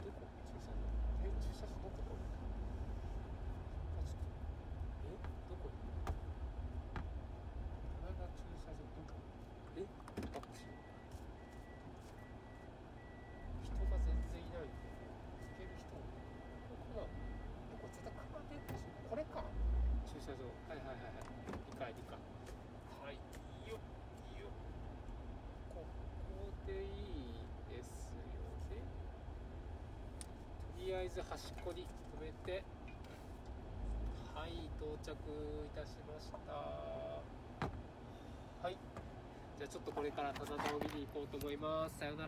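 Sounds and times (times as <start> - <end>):
low rumble and road noise inside a car driving in Niigata, Japan: 0.0 - 42.2
soft repeating electronic beep: 10.5 - 19.7
speech: 31.1 - 32.7, 34.8 - 37.0, 38.6 - 38.9, 39.6 - 42.2
car thumps from road bumps: 37.6 - 37.9.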